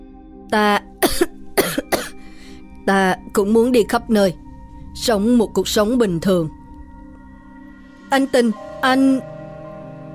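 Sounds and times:
speech: 0.5s - 0.9s, 2.9s - 4.4s, 5.0s - 6.6s, 8.1s - 9.3s
young man in black coughing dryly while crawling out from beneath earth and rubble: 1.0s - 2.2s.

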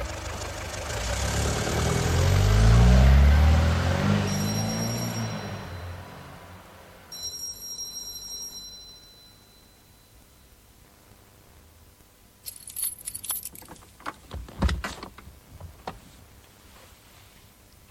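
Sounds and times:
taxi car driving away: 0.0s - 7.1s.

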